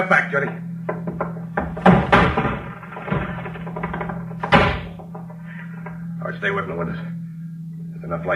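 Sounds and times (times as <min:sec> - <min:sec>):
speech: 0:00.0 - 0:01.0, 0:06.4 - 0:07.2, 0:08.0 - 0:08.3
wooden door rattling and creaking: 0:00.5 - 0:06.0
heavy thuds against a wooden door being kicked in: 0:00.8 - 0:05.5.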